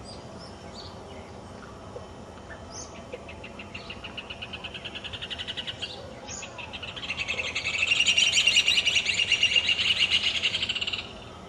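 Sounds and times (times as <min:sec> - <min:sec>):
Rufous hornero song of rapid shrill chatter: 0:03.6 - 0:11.1.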